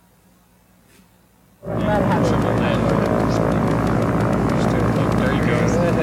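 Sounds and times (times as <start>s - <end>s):
aircraft engine drone during a load drop: 1.6s - 6.0s.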